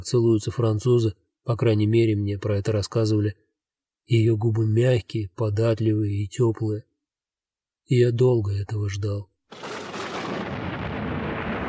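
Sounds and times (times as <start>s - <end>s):
speech: 0.0s - 3.4s, 4.1s - 6.9s, 7.9s - 9.7s
thunder clap: 9.5s - 11.6s.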